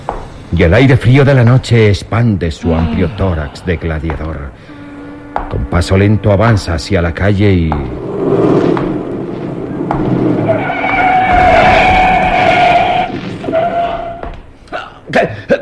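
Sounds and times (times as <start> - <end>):
speech: 0.5 - 4.8, 5.5 - 8.9, 9.9 - 10.6
car tire screech skidding to a stop at night: 5.8 - 14.2
car engine rumbling: 6.4 - 14.2.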